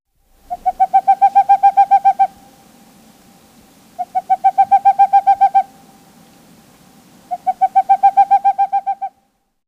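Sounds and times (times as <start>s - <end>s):
boreal owl hooting: 0.5s - 2.5s, 4.0s - 5.8s, 7.3s - 9.2s.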